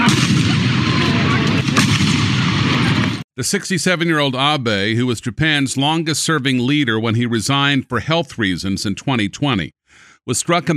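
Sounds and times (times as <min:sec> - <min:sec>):
gunshots fired on a street in western Japan: 0:00.0 - 0:03.2
steady outdoor crowd noise on a street: 0:00.0 - 0:03.7
speech: 0:03.4 - 0:10.7.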